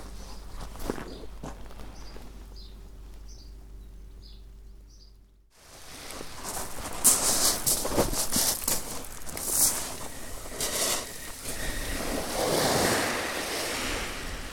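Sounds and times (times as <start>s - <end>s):
gentle waves washing over a pebble beach: 5.6s - 14.5s
light wind noise on the microphone: 9.6s - 14.5s.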